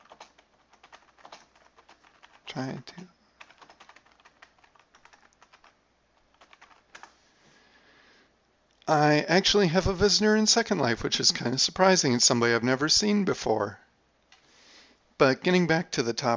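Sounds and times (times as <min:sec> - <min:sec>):
computer keyboard typing: 0:00.0 - 0:07.2
speech: 0:02.5 - 0:03.2, 0:08.9 - 0:13.8, 0:15.2 - 0:16.3.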